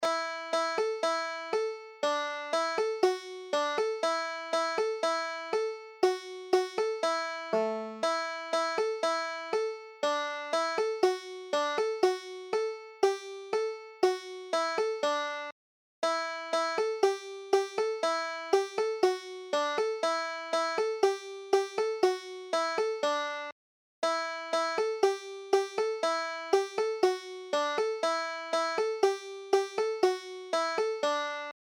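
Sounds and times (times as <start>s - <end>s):
banjo tune: 0.0s - 31.6s.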